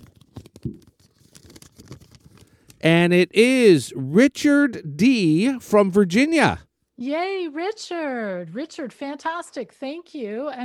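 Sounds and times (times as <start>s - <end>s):
small slip of paper unfolded: 0.0s - 2.8s
speech: 2.8s - 10.6s.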